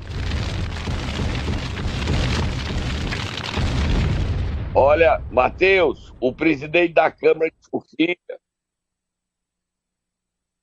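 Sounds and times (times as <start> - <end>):
huge MOAB bomb explosion with deep rumbling: 0.0 - 6.9
speech: 4.8 - 8.4.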